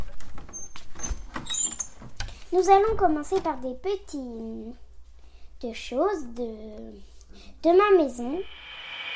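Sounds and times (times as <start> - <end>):
long rising door hinge squeal: 0.5 - 1.9
speech: 2.5 - 4.8, 5.6 - 8.6.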